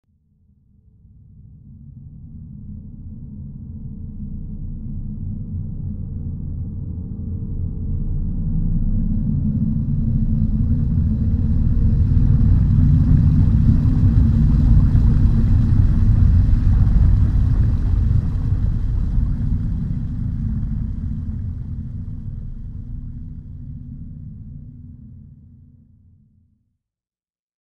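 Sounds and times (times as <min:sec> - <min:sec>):
submarine sailing underwater: 0:08.3 - 0:25.0.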